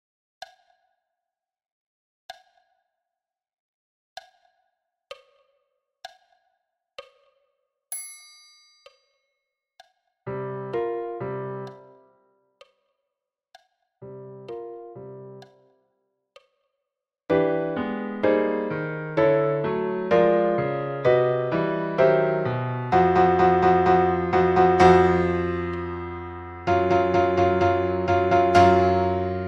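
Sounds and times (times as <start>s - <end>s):
solo piano: 10.3s - 12.0s, 14.0s - 15.5s, 17.3s - 29.4s.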